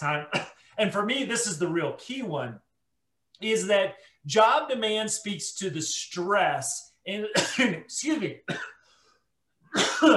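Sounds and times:
speech: 0:00.0 - 0:02.7, 0:03.4 - 0:08.8, 0:09.7 - 0:10.1
rough raspy throat clearing after eating wasabi peas: 0:00.2 - 0:00.7, 0:08.4 - 0:08.9, 0:09.7 - 0:10.1.

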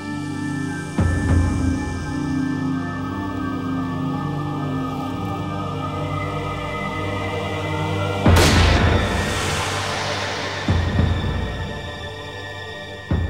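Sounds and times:
steady low droning ambience: 0:00.0 - 0:13.2
single gunshot in a field: 0:08.4 - 0:09.7.

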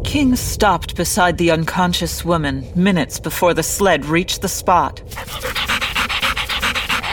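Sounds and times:
speech: 0:00.2 - 0:05.6
dog panting close to a person's face: 0:05.1 - 0:07.1.

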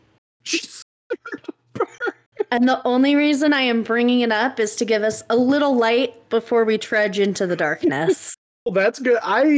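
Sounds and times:
loud human sneeze: 0:00.4 - 0:02.2
speech: 0:02.5 - 0:09.5.

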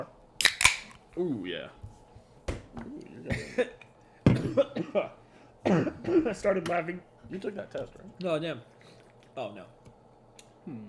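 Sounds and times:
speech: 0:01.2 - 0:01.8, 0:02.8 - 0:03.9, 0:04.6 - 0:08.7, 0:09.4 - 0:09.8, 0:10.6 - 0:10.8
wet throaty coughs: 0:04.4 - 0:06.3.

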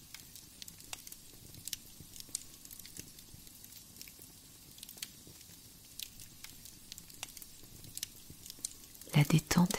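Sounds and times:
fire in a mountain cave crackling and popping: 0:00.0 - 0:09.7
speech: 0:09.3 - 0:09.7.

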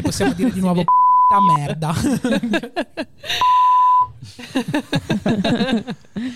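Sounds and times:
laughter: 0:00.0 - 0:03.5, 0:04.2 - 0:06.3
speech: 0:00.1 - 0:03.7, 0:04.4 - 0:06.3
censorship bleep tone covering a swear word: 0:00.9 - 0:01.6, 0:03.4 - 0:04.2.

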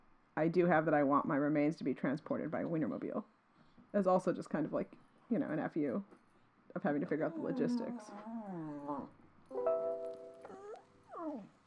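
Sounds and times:
speech: 0:00.4 - 0:09.2
dog whimpering: 0:07.2 - 0:09.6, 0:10.3 - 0:11.6.

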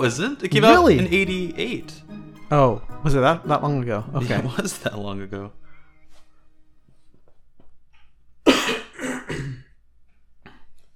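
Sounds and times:
speech: 0:00.0 - 0:05.6
harsh coughing: 0:08.5 - 0:09.8.

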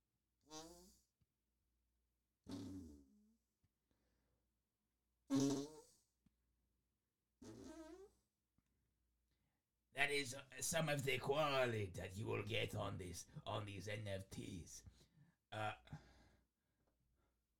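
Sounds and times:
loud buzzy farts: 0:00.4 - 0:01.0, 0:02.4 - 0:03.4, 0:05.3 - 0:06.0, 0:07.4 - 0:08.2
speech: 0:10.2 - 0:16.1.

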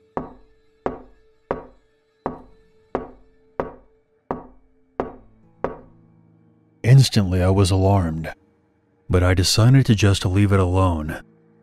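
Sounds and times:
slow solid knocking on a door: 0:00.2 - 0:05.9
speech: 0:07.0 - 0:08.4, 0:09.1 - 0:11.3.

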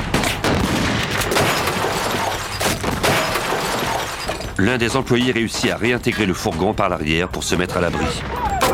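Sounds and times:
gunfire as thieves shoot at an armoured van's driver who fires back: 0:00.0 - 0:04.1
speech: 0:04.6 - 0:08.6.

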